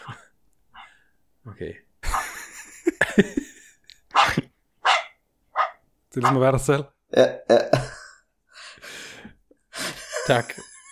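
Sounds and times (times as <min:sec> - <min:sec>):
speech: 0:01.6 - 0:01.9, 0:03.2 - 0:03.4, 0:06.2 - 0:07.8, 0:10.3 - 0:10.7
laughter: 0:02.0 - 0:04.5, 0:09.8 - 0:10.8
dog giving short sharp yips: 0:04.2 - 0:06.4.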